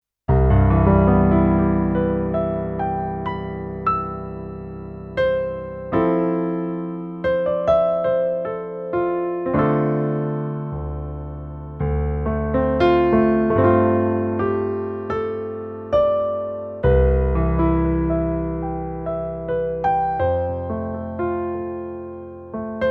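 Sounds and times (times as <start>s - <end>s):
concert piano sound on a keyboard: 0.3s - 22.9s.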